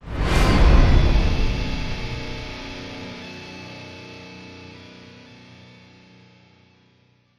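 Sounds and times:
soft whoosh: 0:00.0 - 0:03.2.

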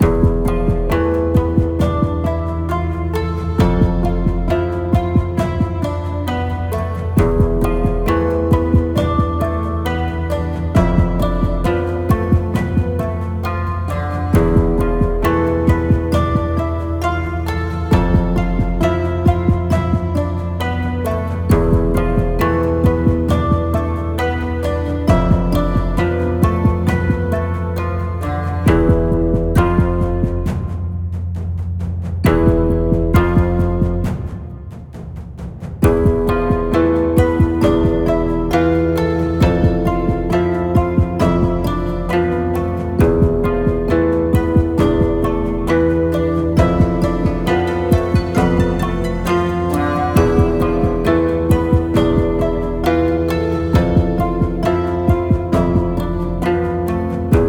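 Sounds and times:
ambient background drums: 0:00.0 - 0:57.4.

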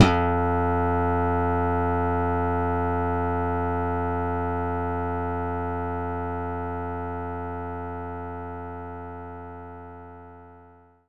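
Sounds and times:
slap bass guitar note F3: 0:00.0 - 0:08.9.

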